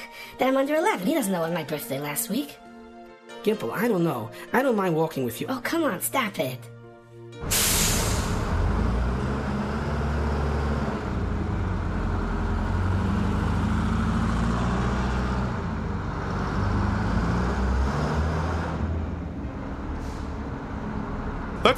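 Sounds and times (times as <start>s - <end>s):
speech: 0.4s - 2.6s, 3.4s - 6.7s
city bus air brakes hissing: 7.4s - 8.7s, 20.0s - 20.6s
road noise: 7.4s - 21.7s.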